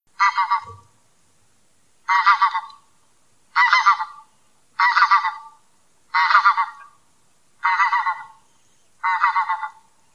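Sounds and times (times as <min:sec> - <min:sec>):
wild goose call: 0:00.2 - 0:00.9, 0:02.1 - 0:02.9, 0:03.5 - 0:07.0, 0:07.6 - 0:09.9.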